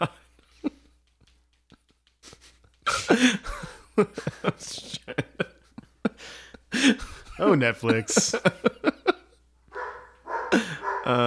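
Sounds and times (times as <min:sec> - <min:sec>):
laughter: 0:01.7 - 0:09.4, 0:10.5 - 0:11.2
speech: 0:03.1 - 0:05.2, 0:06.8 - 0:08.8, 0:11.1 - 0:11.2
dog barking: 0:09.7 - 0:11.2.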